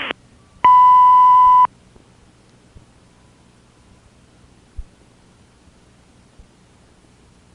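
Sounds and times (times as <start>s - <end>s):
answering machine beep tone on phone line: 0.7s - 1.7s.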